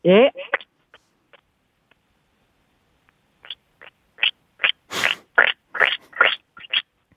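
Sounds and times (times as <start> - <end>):
speech: 0.0 - 0.4
voice imitating frog croaking: 0.0 - 0.7, 3.4 - 6.9.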